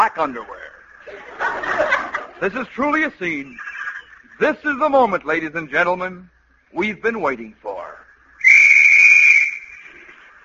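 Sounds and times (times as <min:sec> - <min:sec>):
speech: 0:00.0 - 0:03.7, 0:04.4 - 0:07.7
laughter: 0:01.0 - 0:02.8
loud sustained high-pitched whistle blast on a white beach: 0:08.4 - 0:10.1.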